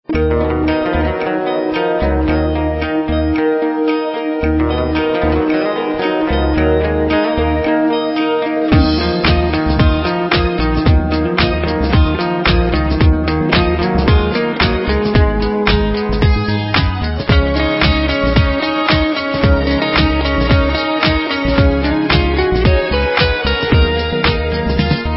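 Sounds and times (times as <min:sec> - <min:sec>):
guitar playing: 0:00.0 - 0:25.1.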